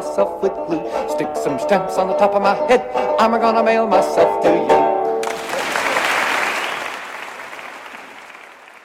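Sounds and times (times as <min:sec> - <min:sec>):
speech: 0:00.2 - 0:00.8, 0:01.5 - 0:04.9
audience applause after a live song: 0:05.2 - 0:08.8.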